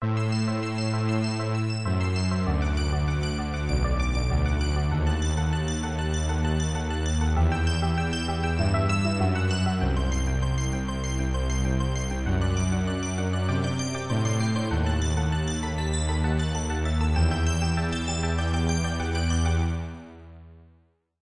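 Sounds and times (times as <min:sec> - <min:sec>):
stringy arpeggio: 0:00.2 - 0:20.0.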